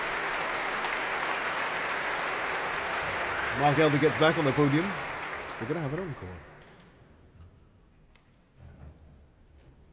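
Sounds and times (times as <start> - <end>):
large concert hall audience applause: 0.0 - 6.6
speech: 3.6 - 6.5.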